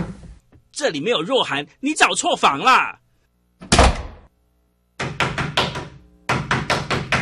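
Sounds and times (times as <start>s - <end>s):
speech: 0.8s - 3.0s
loud knocking on a room door: 5.0s - 7.2s.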